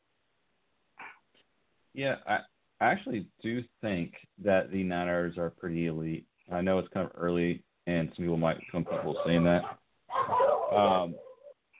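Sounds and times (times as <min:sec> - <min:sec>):
speech: 0:02.0 - 0:11.2
dog barking and whining: 0:08.8 - 0:11.6.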